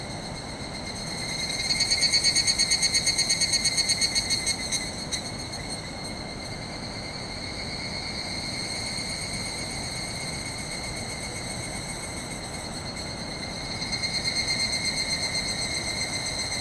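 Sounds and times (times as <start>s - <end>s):
evening cicada chorus pulsing trill inside woodland after sunset: 0.0s - 16.6s.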